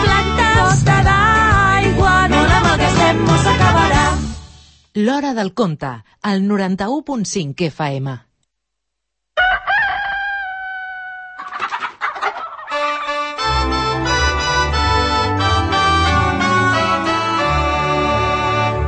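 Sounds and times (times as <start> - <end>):
upbeat music track: 0.0 - 4.6, 12.8 - 18.8
speech: 5.0 - 8.3
rooster crowing: 9.4 - 11.6.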